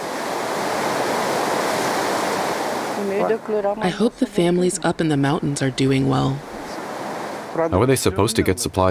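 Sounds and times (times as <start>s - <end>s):
rushing water of a river swollen by heavy rain in full flood: 0.0s - 4.5s, 6.2s - 8.6s
speech: 3.2s - 6.5s, 7.6s - 8.8s.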